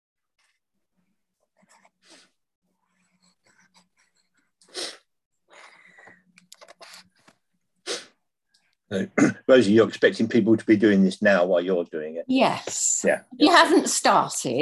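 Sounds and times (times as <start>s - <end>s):
pencil rubbing across paper while drawing: 1.3s - 4.7s
speech: 8.9s - 14.6s.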